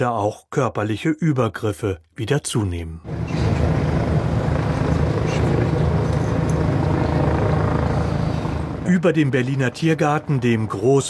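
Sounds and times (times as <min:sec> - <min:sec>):
speech: 0:00.0 - 0:03.4, 0:08.9 - 0:11.0
police helicopter rotor drone circling over a large city park: 0:03.1 - 0:11.0.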